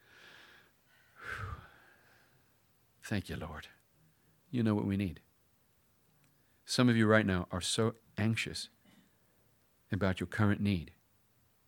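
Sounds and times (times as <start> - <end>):
deep breath drawn in during a sermon: 0.0 - 2.5
faint hiss: 0.0 - 11.6
speech: 3.1 - 3.8, 4.5 - 5.3, 6.7 - 8.8, 9.9 - 11.0.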